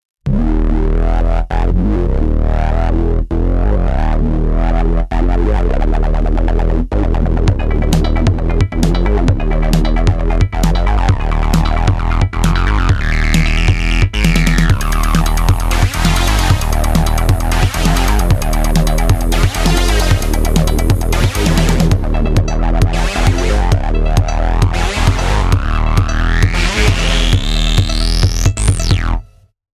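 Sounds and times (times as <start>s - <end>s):
IK Multimedia Uno Synth acid synth: 0.3s - 29.3s.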